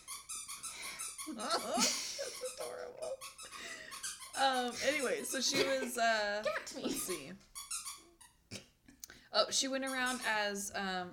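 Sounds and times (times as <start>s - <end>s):
squeaky toy squeaking: 0.0s - 5.8s, 6.5s - 8.5s, 9.7s - 10.6s
speech: 1.3s - 3.8s, 4.4s - 7.5s, 9.3s - 11.1s.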